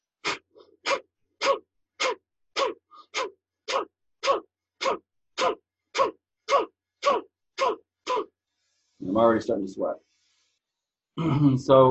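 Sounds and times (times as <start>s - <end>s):
bhastrika breathing with forceful nasal exhales and inhales: 0.1s - 9.0s
speech: 9.2s - 10.1s, 11.2s - 11.8s.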